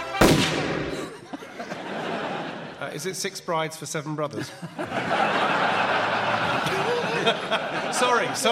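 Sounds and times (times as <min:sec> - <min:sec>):
shotgun blast: 0:00.2 - 0:01.2
laughter: 0:00.9 - 0:03.2, 0:04.3 - 0:08.5
speech: 0:03.0 - 0:05.6, 0:07.2 - 0:08.5.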